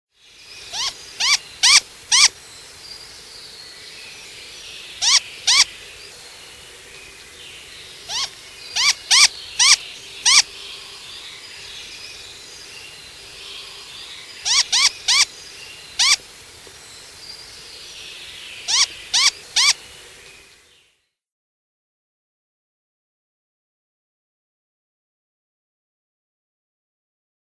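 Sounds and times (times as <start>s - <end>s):
downy young Great Grey Owl calling: 0.7s - 2.4s, 5.0s - 5.7s, 8.0s - 10.5s, 14.4s - 15.3s, 15.9s - 16.2s, 18.6s - 19.8s.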